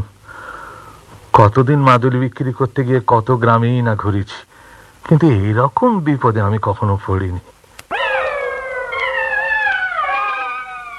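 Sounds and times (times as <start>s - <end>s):
speech: 1.4s - 4.5s, 5.1s - 7.6s
jackals howling along a road through empty open fields at night: 7.9s - 10.9s.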